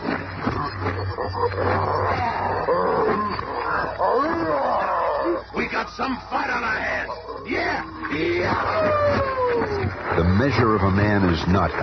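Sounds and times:
maddened gorilla roaring and snarling as it attacks: 0:00.4 - 0:05.7, 0:06.8 - 0:10.3
speech: 0:01.1 - 0:03.3, 0:05.6 - 0:09.3, 0:10.1 - 0:11.8.

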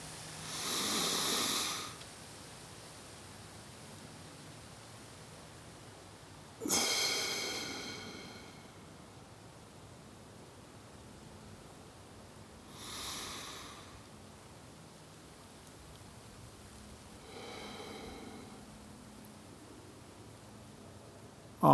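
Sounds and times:
slow deep breaths in through the nose and out through the mouth: 0:00.4 - 0:02.0, 0:06.6 - 0:09.0, 0:12.7 - 0:14.1, 0:17.1 - 0:19.1.

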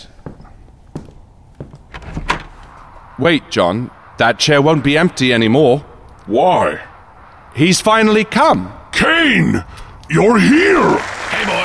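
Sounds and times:
dull thunks of a door: 0:00.2 - 0:02.7
door opening: 0:00.2 - 0:02.8
door latch and frame rattling: 0:01.9 - 0:02.6
speech: 0:03.2 - 0:06.9, 0:07.6 - 0:11.6.

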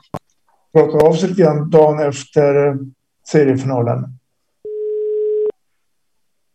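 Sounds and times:
speech: 0:00.7 - 0:04.2
electronic telephone ringback tone while calling: 0:04.7 - 0:05.5.

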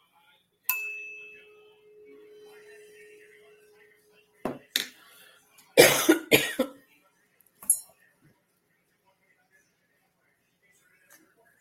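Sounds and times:
person with a minor illness coughing: 0:05.8 - 0:06.8.

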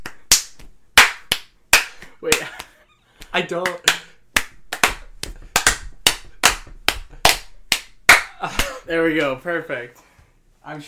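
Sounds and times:
two people clapping hands in a clapping game: 0:00.0 - 0:09.4
speech: 0:02.2 - 0:02.6, 0:03.4 - 0:04.0, 0:08.4 - 0:10.8.

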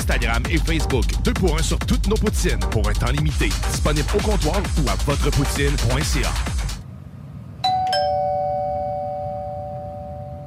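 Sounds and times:
speech: 0:00.1 - 0:06.5
doorbell two-tone ding-dong: 0:07.6 - 0:10.4.

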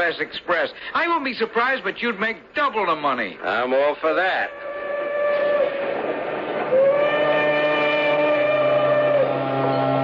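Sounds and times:
speech: 0:00.0 - 0:04.7
steam train whistle: 0:04.5 - 0:10.0.

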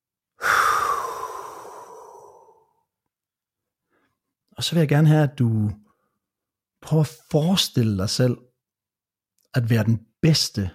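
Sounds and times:
deep breath in through the nose and out through the mouth: 0:00.4 - 0:02.9
speech: 0:04.6 - 0:05.8, 0:06.8 - 0:08.5, 0:09.5 - 0:10.7.

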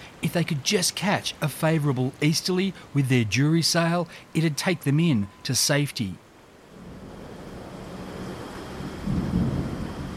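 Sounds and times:
steady rain: 0:00.0 - 0:10.1
speech: 0:00.2 - 0:06.2
deep roll of heavy thunder: 0:06.8 - 0:10.1.

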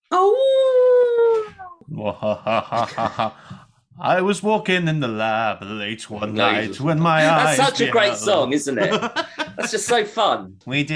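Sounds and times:
person imitating a wolf howl: 0:00.1 - 0:01.8
laughter: 0:01.9 - 0:03.5, 0:08.7 - 0:10.2
speech: 0:01.9 - 0:10.9.

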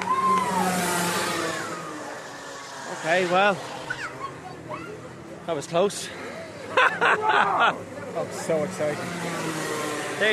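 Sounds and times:
racing car engine revving past during a car race: 0:00.0 - 0:04.1, 0:08.3 - 0:10.3
speech: 0:03.0 - 0:03.8, 0:05.5 - 0:09.4
laughter: 0:06.5 - 0:08.0.

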